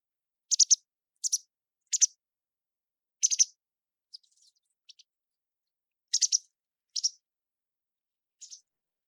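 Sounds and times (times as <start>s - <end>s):
White Wagtail giving sharp high chip calls: 0.5s - 2.2s, 3.2s - 3.5s, 6.1s - 7.2s, 8.4s - 8.6s.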